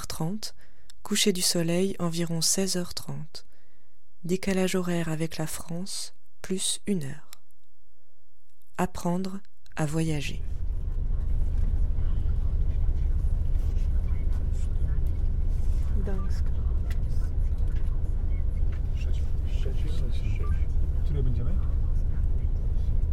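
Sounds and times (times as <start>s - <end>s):
speech: 0.2s - 3.5s, 4.2s - 7.3s, 8.8s - 10.6s, 16.0s - 16.6s, 21.2s - 21.7s
voices: 10.3s - 23.1s
bus engines idling in a bus station: 10.5s - 23.1s.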